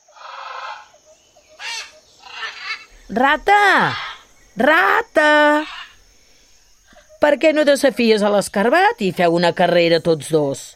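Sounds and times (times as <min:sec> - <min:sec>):
parrot perched on a tree branch squawking: 0:00.1 - 0:00.9, 0:01.6 - 0:03.0, 0:03.6 - 0:04.3, 0:05.4 - 0:06.0
speech: 0:03.1 - 0:04.0, 0:04.6 - 0:05.7, 0:07.2 - 0:10.7.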